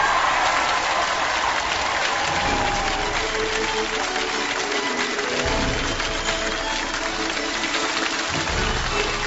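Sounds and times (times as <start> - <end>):
large audience applause welcoming guest speaker: 0.0 - 9.2.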